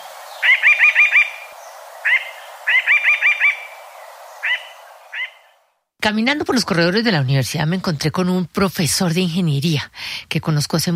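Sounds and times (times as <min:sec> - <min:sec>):
faint hiss: 0:00.0 - 0:10.9
mountain jay trilling: 0:00.3 - 0:05.6
speech: 0:06.0 - 0:10.9.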